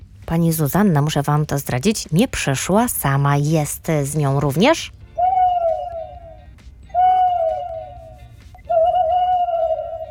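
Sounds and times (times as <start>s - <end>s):
speech: 0.3s - 5.0s
voice imitating owl hoots as an owl character: 5.2s - 10.1s.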